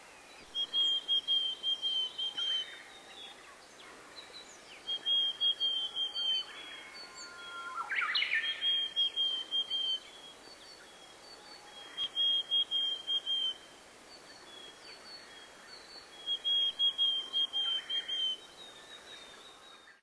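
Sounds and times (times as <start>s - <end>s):
willow tit calling: 0.4s - 2.9s, 4.8s - 6.6s, 7.7s - 19.1s.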